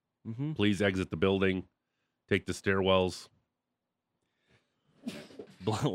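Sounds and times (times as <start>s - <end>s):
speech: 0.2s - 3.4s, 5.0s - 5.9s
loud sneeze: 5.0s - 5.6s.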